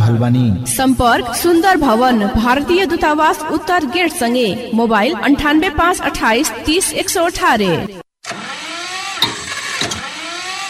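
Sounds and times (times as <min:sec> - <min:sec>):
speech: 0:00.2 - 0:08.0
farm tractor engine sputtering while being started: 0:08.2 - 0:10.6.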